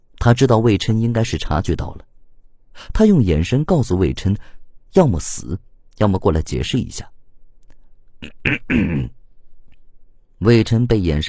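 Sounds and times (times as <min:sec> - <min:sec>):
speech: 0:00.2 - 0:02.1, 0:02.8 - 0:07.2, 0:08.2 - 0:09.2, 0:10.4 - 0:11.2
person coughing: 0:08.2 - 0:09.2.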